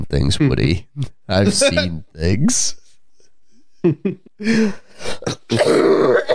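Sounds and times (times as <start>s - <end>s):
speech: 0.1s - 2.8s, 3.8s - 6.3s
sick person coughing and clearing throat: 5.0s - 6.3s.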